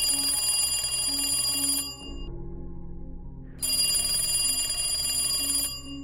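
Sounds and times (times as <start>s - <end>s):
old telephone bell ringing: 0.0s - 2.3s, 3.6s - 6.0s.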